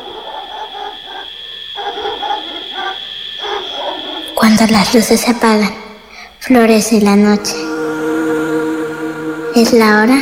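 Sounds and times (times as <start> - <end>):
distant dog barking: 0.0 - 4.5
high-pitched chorus of night creatures: 0.0 - 10.1
speech: 4.5 - 5.8, 6.4 - 7.6, 9.6 - 10.1.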